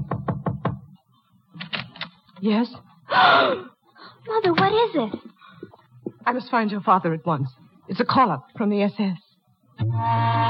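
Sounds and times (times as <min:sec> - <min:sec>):
firm knocking on a door: 0:00.0 - 0:00.8
speech: 0:02.4 - 0:05.3, 0:06.3 - 0:09.2, 0:09.9 - 0:10.4.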